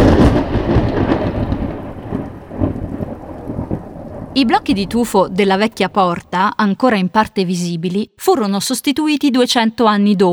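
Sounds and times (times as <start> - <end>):
steady heavy rain: 0.0 - 6.3
thunder from a lightning strike: 0.0 - 7.3
speech: 4.4 - 10.3.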